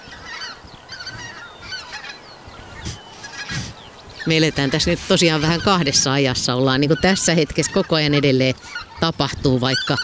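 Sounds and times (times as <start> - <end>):
flock of geese honking overhead: 0.0 - 10.0
speech: 4.2 - 10.0.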